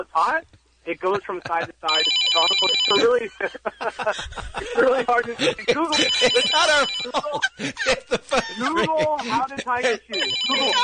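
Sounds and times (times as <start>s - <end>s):
speech: 0.0s - 10.8s
laughter: 1.1s - 2.1s, 2.9s - 10.8s
telephone ringing in rapid trilling bursts: 1.8s - 3.2s, 5.8s - 7.3s, 10.1s - 10.8s.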